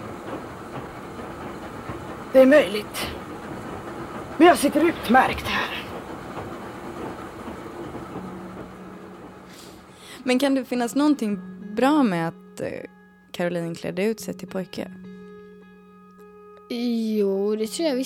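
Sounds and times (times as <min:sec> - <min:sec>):
train carriage rumbling on rails: 0:00.0 - 0:12.4
speech: 0:02.3 - 0:03.2, 0:04.4 - 0:05.8, 0:10.3 - 0:15.0, 0:16.7 - 0:18.0.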